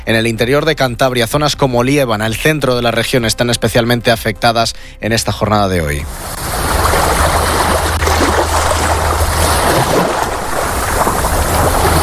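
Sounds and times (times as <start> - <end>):
speech: 0.1 - 6.5
constant low rumble: 6.0 - 12.0
sea surf roaring on a beach: 6.0 - 12.0.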